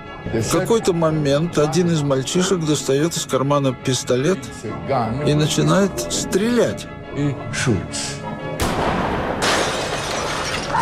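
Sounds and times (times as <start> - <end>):
speech: 0.2 - 8.3
glass shattering: 9.4 - 10.8.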